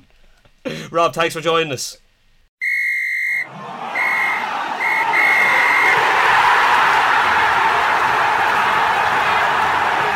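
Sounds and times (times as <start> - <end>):
speech: 0.9 - 2.0
referee's full-time whistle blasts: 2.6 - 5.9
broad crowd roar: 3.4 - 10.1.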